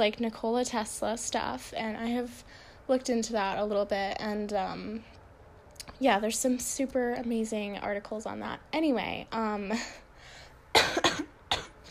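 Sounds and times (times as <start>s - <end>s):
speech: 0.0s - 5.2s, 5.8s - 10.0s
breathing: 2.4s - 2.9s, 9.8s - 10.6s
person with a cold and bronchial condition coughing: 10.8s - 11.9s.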